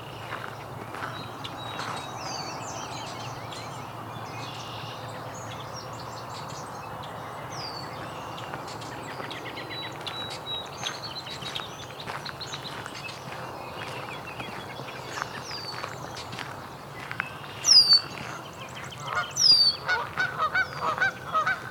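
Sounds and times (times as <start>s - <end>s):
red-winged blackbirds calling in a dense outdoor chorus: 0.0s - 21.7s
Canada geese on a pond honking: 19.0s - 21.7s.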